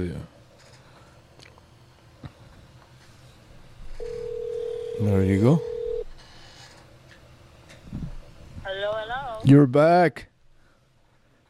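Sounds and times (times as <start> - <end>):
speech: 0.0 - 0.3, 5.0 - 5.7, 9.4 - 10.3
short tone on an old studio telephone line: 4.0 - 6.1.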